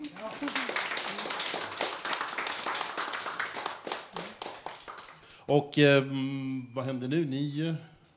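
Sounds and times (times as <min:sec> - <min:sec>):
small group applauding: 0:00.0 - 0:05.5
speech: 0:05.5 - 0:07.9.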